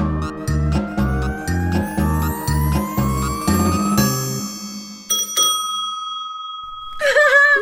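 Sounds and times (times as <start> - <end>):
whistle-like rising tone: 0.0 - 4.9
bicycle bell ringing: 3.0 - 7.6.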